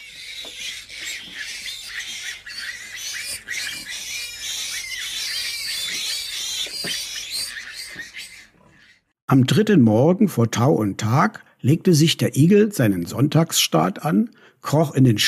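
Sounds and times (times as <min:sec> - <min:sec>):
pigs squealing in stables, sties and pens: 0:00.0 - 0:09.1
speech: 0:09.3 - 0:15.2.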